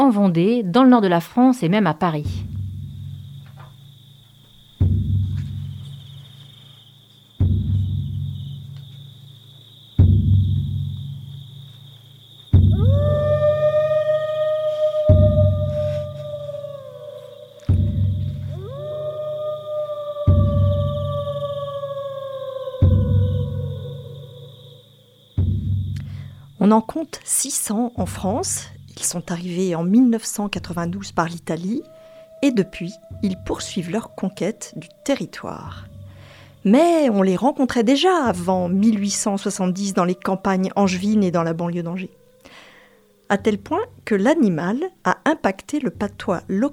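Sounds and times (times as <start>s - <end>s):
speech: 0.1s - 2.5s, 26.7s - 35.9s, 36.6s - 42.2s, 43.3s - 46.7s
pulsing low thump: 2.2s - 4.0s, 4.7s - 6.2s, 7.4s - 9.0s, 10.0s - 11.4s, 12.5s - 19.6s, 20.2s - 21.7s, 22.8s - 24.6s, 25.3s - 26.1s, 31.8s - 36.6s
wolves howling: 12.6s - 25.3s, 31.2s - 43.4s.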